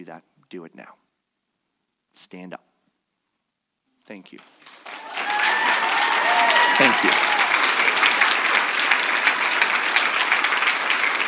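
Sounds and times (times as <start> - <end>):
speech: 0.0 - 1.0, 2.2 - 2.7, 4.1 - 4.9, 6.8 - 7.5
audience applause: 4.4 - 11.2.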